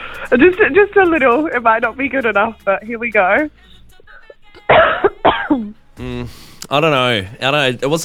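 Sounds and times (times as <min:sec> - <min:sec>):
speech: 0:00.3 - 0:04.0, 0:04.7 - 0:08.0
deliberate imitation of a sick cough: 0:04.6 - 0:05.8.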